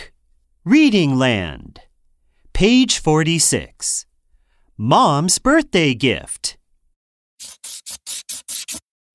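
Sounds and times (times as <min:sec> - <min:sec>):
speech: 0:00.6 - 0:01.8, 0:02.6 - 0:04.1, 0:04.8 - 0:06.6
quick scratchy bursts: 0:07.4 - 0:08.8.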